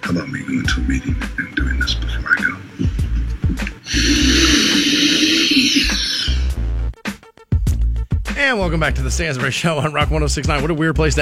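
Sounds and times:
speech: 0.1s - 2.9s, 8.4s - 11.2s
loud nasal snorting of cocaine: 0.8s - 6.6s.

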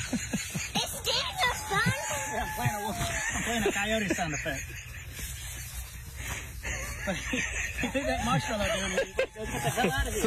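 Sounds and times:
laughter: 0.0s - 10.2s
people talking outdoors: 0.0s - 10.2s
coyote sound effect howls and yips from small phone speaker: 1.1s - 3.4s, 8.2s - 10.1s.

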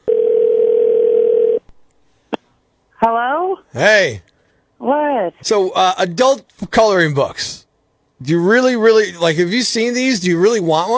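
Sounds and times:
telephone dial tone: 0.1s - 1.6s
speech: 3.0s - 7.6s, 8.2s - 10.9s.

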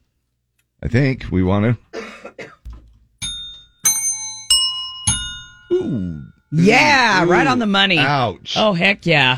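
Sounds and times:
speech: 0.8s - 2.4s, 5.9s - 9.3s
soft knocks: 2.6s - 3.7s
slightly out-of-tune bells struck: 3.2s - 6.4s.

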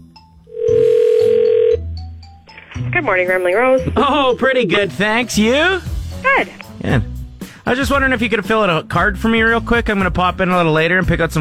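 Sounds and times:
telephone ring tone: 0.5s - 2.0s
speech: 3.0s - 7.1s, 7.7s - 11.4s.

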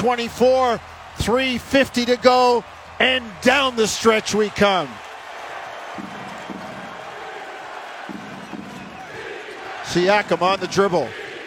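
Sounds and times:
speech: 0.0s - 5.0s, 9.9s - 11.2s
large arena crowd roaring: 0.0s - 11.4s
arena crowd chanting for defense: 5.0s - 11.4s.

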